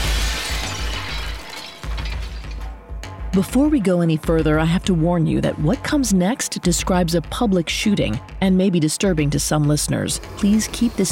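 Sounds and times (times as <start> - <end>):
car rear windshield glass shattering: 0.0 - 2.7
glass fragments crackling and tinkling: 0.0 - 2.7
speech: 3.4 - 11.1.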